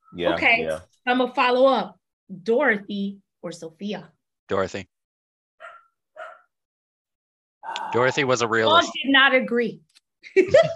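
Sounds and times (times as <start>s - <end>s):
speech: 0.1s - 4.9s, 7.7s - 10.7s
puppy barking: 5.6s - 6.5s.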